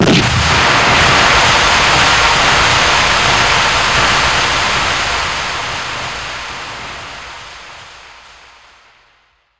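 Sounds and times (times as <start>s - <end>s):
smoke grenade: 0.0s - 7.2s.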